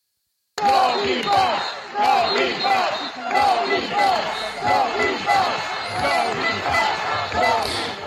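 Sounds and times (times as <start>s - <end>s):
large protest crowd chanting against the Green Pass in Milan: 0.6s - 8.0s
sharp rhythmic beats: 0.6s - 8.0s.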